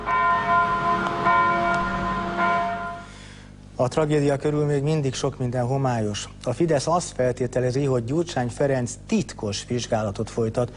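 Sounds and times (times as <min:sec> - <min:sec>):
church bell ringing at noon: 0:00.0 - 0:03.3
speech: 0:03.8 - 0:10.7.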